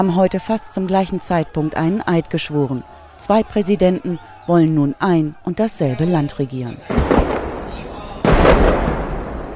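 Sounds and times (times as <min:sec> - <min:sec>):
speech: 0:00.0 - 0:07.1
noisy crowd murmur at a presidential swearing-in ceremony: 0:00.0 - 0:08.4
gunfire: 0:06.9 - 0:09.5
rocket explosion: 0:06.9 - 0:09.5.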